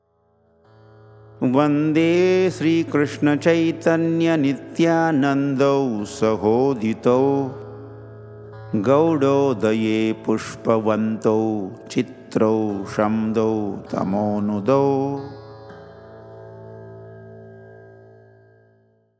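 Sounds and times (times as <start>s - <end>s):
person chanting a tuned shloka: 1.4s - 7.9s, 8.7s - 15.5s.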